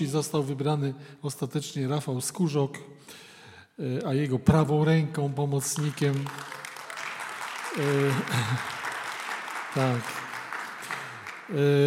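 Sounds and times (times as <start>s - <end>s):
speech: 0.0s - 6.6s, 7.7s - 8.8s, 9.7s - 10.2s, 11.5s - 11.8s
audience applause: 5.8s - 11.8s.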